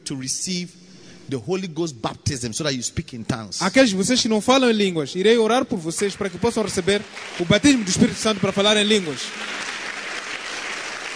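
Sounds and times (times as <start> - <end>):
speech: 0.1 - 9.7
audience clapping: 5.7 - 11.1.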